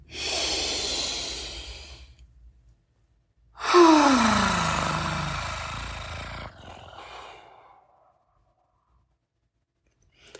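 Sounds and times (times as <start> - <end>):
slow deep human breaths: 0.0 - 2.3, 3.6 - 8.8.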